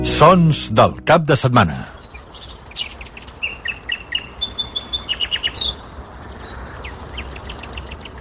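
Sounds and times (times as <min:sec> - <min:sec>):
speech: 0:00.2 - 0:01.9
small birds chirping outdoors at Sils: 0:01.9 - 0:08.1.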